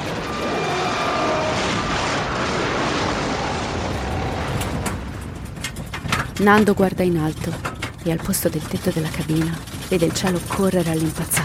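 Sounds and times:
airplane crashing into mountain top roaring rumble: 0.0s - 6.8s
speech: 6.4s - 11.4s.

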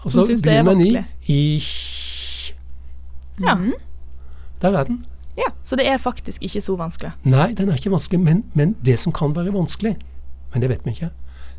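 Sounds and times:
speech: 0.0s - 1.9s, 3.4s - 3.9s, 4.6s - 11.2s
voiceless whispered i sound, steady hiss of air: 0.0s - 2.6s
faint hum: 0.0s - 11.5s.

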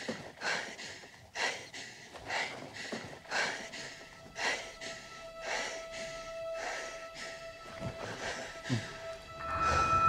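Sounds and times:
heavy rapid breathing in a movie trailer: 0.0s - 10.0s
steady sustained tone: 3.6s - 10.0s.

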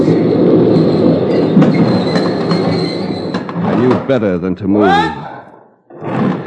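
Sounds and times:
train wheels squealing: 0.0s - 3.6s
train pulling into station: 0.0s - 4.3s
speech: 4.1s - 5.3s.

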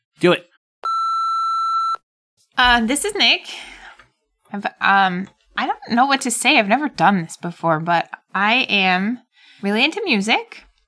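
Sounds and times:
speech: 0.2s - 0.5s, 2.6s - 3.8s, 4.5s - 10.7s
voicemail beep: 0.8s - 2.0s.

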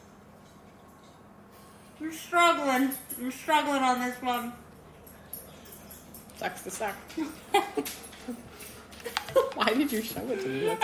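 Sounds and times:
speech: 2.0s - 4.6s, 6.4s - 10.8s
dog whimpering: 10.2s - 10.8s.

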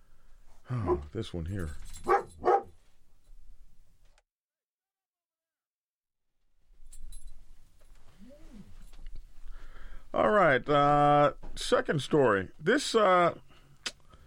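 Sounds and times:
speech: 0.7s - 2.1s, 10.6s - 13.5s
dog barking: 0.8s - 1.1s, 2.0s - 2.8s.

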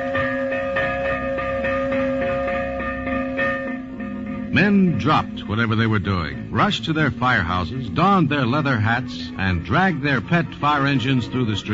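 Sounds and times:
fire alarm bell of early volunteer fire companies in New York ringing: 0.0s - 7.0s
speech: 4.6s - 11.7s.

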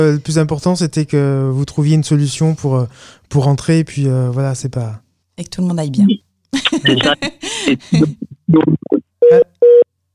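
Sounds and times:
speech: 0.0s - 9.8s
laughter: 6.6s - 8.2s
telephone line tone beeps after a call cuts off: 8.6s - 9.8s.

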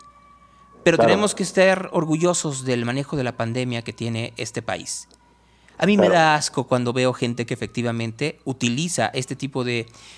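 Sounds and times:
ambulance siren of an ambulance heading to a COVID hospital: 0.0s - 4.5s, 5.3s - 6.5s
speech: 0.8s - 5.2s, 5.8s - 10.1s.

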